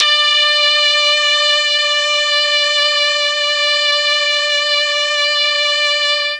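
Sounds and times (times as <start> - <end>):
D4 brass note on an MKII mellotron: 0.0 - 6.3.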